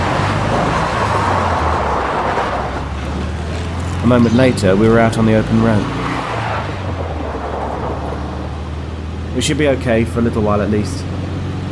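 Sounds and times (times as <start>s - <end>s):
road noise: 0.0s - 11.6s
truck engine revving and accelerating away: 0.0s - 11.6s
speech: 4.1s - 6.0s, 9.4s - 11.1s.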